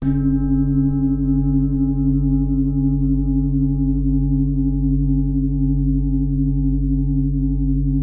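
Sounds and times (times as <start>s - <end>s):
low gong ringtone: 0.0s - 7.9s.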